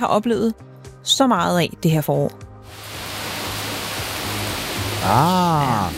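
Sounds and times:
speech: 0.0s - 2.9s, 5.0s - 5.9s
spring rain falling on Bornholm: 2.7s - 5.9s.

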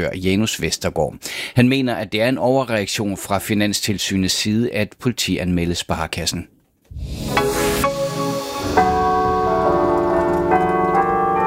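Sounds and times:
speech: 0.0s - 7.1s
carillon of Viborg Cathedral in Denmark ringing a melodic sequence: 8.2s - 11.4s.

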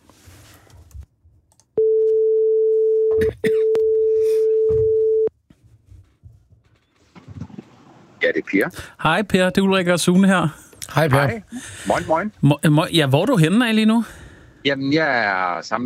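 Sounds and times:
telephone ringing tone: 1.8s - 5.3s
speech: 8.5s - 15.8s.

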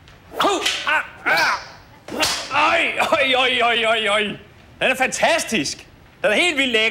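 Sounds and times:
sharp whip lashes cracking: 0.3s - 2.6s
speech: 2.8s - 6.8s.

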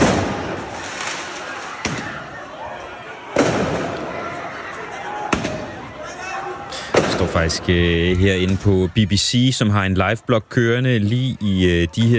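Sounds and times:
fireworks banging in an open street: 0.0s - 2.2s, 3.3s - 4.3s, 6.8s - 8.6s
dense noisy crowd and street commotion: 0.0s - 12.1s
speech: 7.4s - 12.1s.

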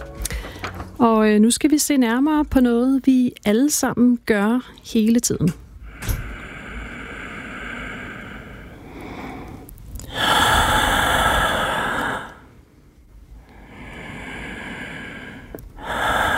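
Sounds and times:
deep gasping human inhales and exhales: 0.2s - 1.0s, 5.8s - 12.6s, 13.4s - 16.3s
speech: 1.0s - 5.6s.

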